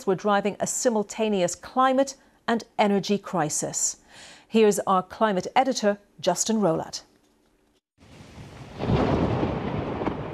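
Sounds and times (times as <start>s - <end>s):
speech: 0.0s - 7.1s
heavy thunder rumbling in a thunderstorm: 8.0s - 10.3s
steady rain falling in a thunderstorm: 8.0s - 10.3s.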